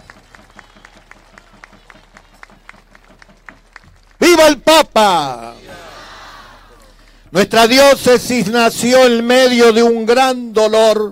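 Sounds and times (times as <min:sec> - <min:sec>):
crowd at a papal visit clapping in a steady rhythm in unison: 0:00.0 - 0:06.1
speech: 0:04.4 - 0:05.4, 0:07.3 - 0:11.1.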